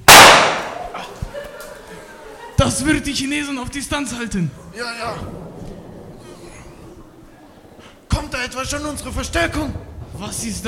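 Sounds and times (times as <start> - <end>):
grenade explosion in a combat scene: 0.0 - 0.9
laughter: 0.7 - 8.0
speech: 2.6 - 5.4, 8.3 - 10.6.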